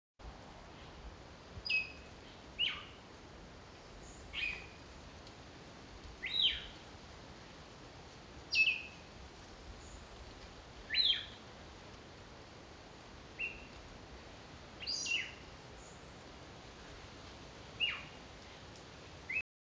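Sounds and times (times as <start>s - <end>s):
Margarops fuscatus bird: 1.6s - 3.0s, 4.0s - 4.8s, 6.2s - 6.8s, 8.5s - 9.0s, 10.9s - 11.4s, 13.4s - 13.8s, 14.8s - 16.2s, 17.8s - 18.2s.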